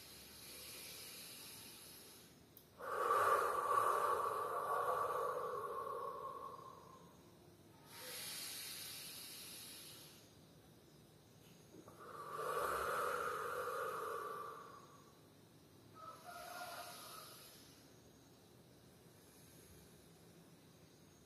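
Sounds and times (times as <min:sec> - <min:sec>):
deep exaggerated breathing during a guided breathing exercise: 0:00.0 - 0:10.3, 0:11.8 - 0:17.9.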